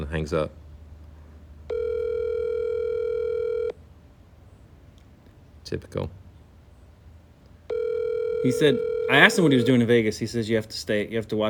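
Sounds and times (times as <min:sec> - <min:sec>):
speech: 0:00.0 - 0:00.6, 0:05.7 - 0:06.2, 0:08.4 - 0:11.4
faint low hum: 0:00.0 - 0:11.4
phone line ringing during an unanswered call: 0:01.7 - 0:03.8, 0:07.7 - 0:10.0.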